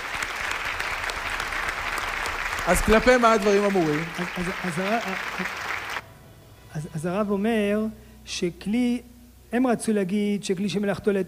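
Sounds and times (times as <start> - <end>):
audience applause at a lecture: 0.0 - 6.0
speech: 2.6 - 5.7, 6.8 - 11.2.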